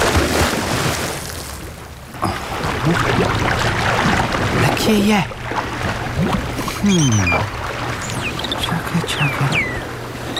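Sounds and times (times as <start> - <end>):
person jumping from an anchored boat into the open sea: 0.0 - 8.4
steady wash of sea and wave noise: 0.0 - 10.3
churning, bubbling sea water: 2.1 - 10.3
speech: 4.9 - 5.4, 6.2 - 7.6.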